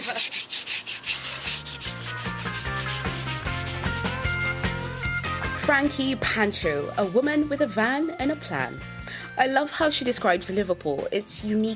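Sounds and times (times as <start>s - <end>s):
sanding decorator's caulk down to wood: 0.0s - 5.6s
rhythmic musical backing: 1.2s - 6.2s
speech: 5.7s - 11.7s.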